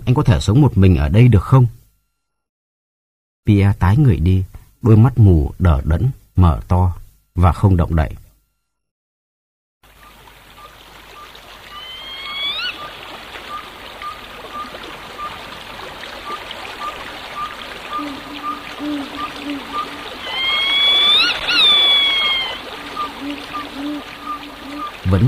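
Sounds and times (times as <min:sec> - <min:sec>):
speech: 0:00.1 - 0:01.8, 0:03.4 - 0:08.2
trickling water of a stream: 0:09.8 - 0:25.2
rising tonal calls: 0:10.6 - 0:25.2.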